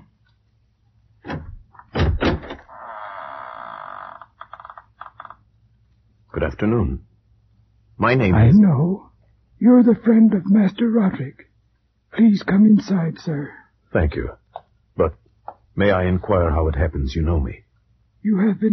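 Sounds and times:
massive wooden door creaking as it swings open: 0:01.2 - 0:05.4
speech: 0:06.4 - 0:07.1, 0:08.0 - 0:11.5, 0:12.2 - 0:14.4, 0:15.0 - 0:15.2, 0:15.8 - 0:17.6, 0:18.2 - 0:18.7.

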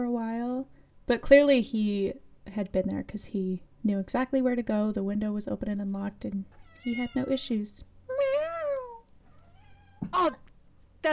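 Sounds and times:
faint noise: 0:00.0 - 0:11.1
speech: 0:01.1 - 0:07.9, 0:10.1 - 0:11.1
cat meowing: 0:06.6 - 0:07.5, 0:08.8 - 0:10.4.

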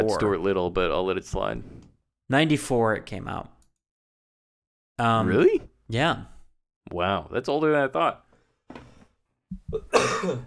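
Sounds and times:
speech: 0:00.0 - 0:03.5, 0:05.0 - 0:06.3, 0:06.9 - 0:08.8, 0:09.7 - 0:10.4
person coughing: 0:09.7 - 0:10.4.

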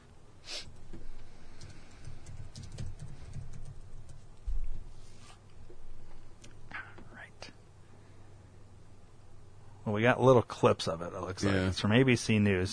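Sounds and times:
typing on a computer keyboard: 0:01.6 - 0:04.3
speech: 0:09.9 - 0:12.7.

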